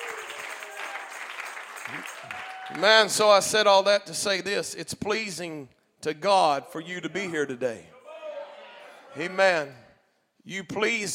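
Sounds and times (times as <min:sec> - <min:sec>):
church audience clapping: 0:00.0 - 0:03.4
speech: 0:01.9 - 0:07.9, 0:09.2 - 0:09.8, 0:10.4 - 0:11.1.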